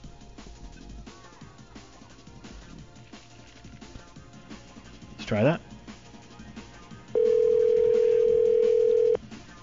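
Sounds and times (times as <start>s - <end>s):
speech: 5.3s - 5.7s
telephone ringback tone calling a payphone: 7.2s - 9.2s.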